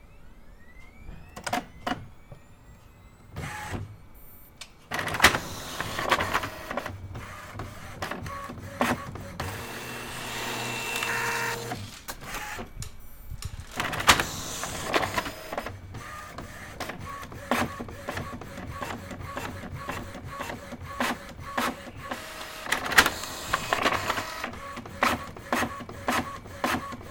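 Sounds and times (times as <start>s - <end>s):
inkjet printer printing: 0.9s - 12.9s, 13.5s - 27.0s.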